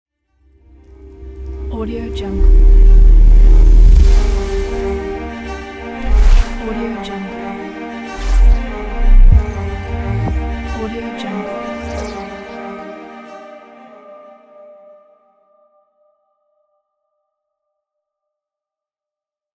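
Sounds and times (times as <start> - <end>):
soft modern trailer logo sound: 0.9 - 7.2, 8.0 - 12.8.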